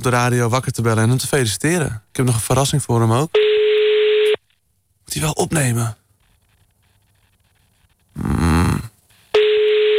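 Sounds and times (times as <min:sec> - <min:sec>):
speech: 0:00.0 - 0:03.7, 0:05.1 - 0:06.0, 0:08.2 - 0:08.4
telephone line ringing tone over the receiver: 0:03.4 - 0:04.4, 0:09.3 - 0:09.9.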